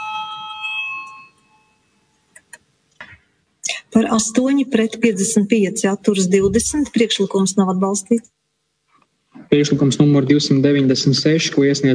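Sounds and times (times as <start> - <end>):
electric bell ringing in a parliament chamber to call a vote: 0.0 - 2.2
speech: 4.0 - 8.4, 9.5 - 11.9.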